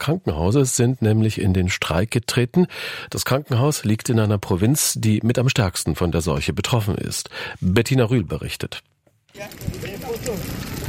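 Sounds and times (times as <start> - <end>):
speech: 0.0 - 10.6
fire burning cardboard, wood and car tyres: 9.3 - 10.8.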